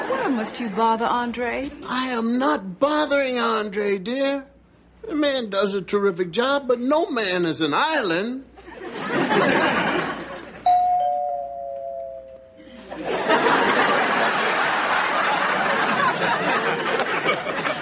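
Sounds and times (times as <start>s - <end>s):
laughter: 0.0s - 0.8s, 8.6s - 10.7s, 12.6s - 17.8s
speech: 0.3s - 9.9s
two-note ding-dong doorbell chime: 10.7s - 12.8s.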